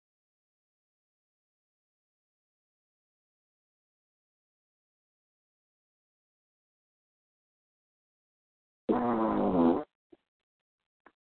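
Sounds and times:
loud drawn-out buzzy fart: 0:08.9 - 0:10.0.

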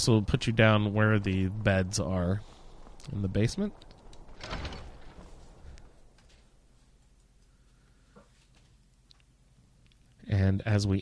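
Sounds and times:
speech: 0:00.0 - 0:04.6, 0:10.3 - 0:11.0
back door of a building creaking and scraping open: 0:04.0 - 0:06.5.

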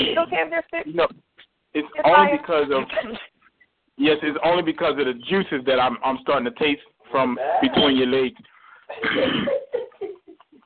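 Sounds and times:
speech: 0:00.0 - 0:03.3, 0:04.0 - 0:09.7
person clearing throat: 0:02.7 - 0:03.2, 0:07.4 - 0:08.1, 0:08.9 - 0:09.7.

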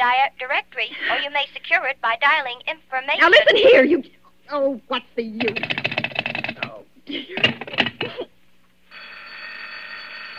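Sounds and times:
speech: 0:00.0 - 0:06.0, 0:07.1 - 0:08.3
telephone bell ringing in a continuous trill: 0:08.9 - 0:10.3.

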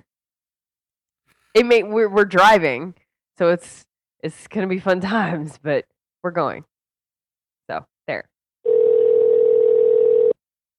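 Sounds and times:
speech: 0:01.5 - 0:06.7, 0:07.7 - 0:08.3
telephone ringing with a steady electronic tone: 0:08.7 - 0:10.4.

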